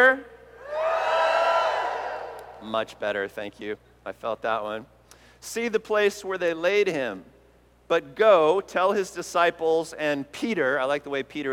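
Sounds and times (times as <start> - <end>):
speech: 0.0 - 0.4, 2.6 - 7.3, 7.9 - 11.5
church audience cheering: 0.6 - 2.7.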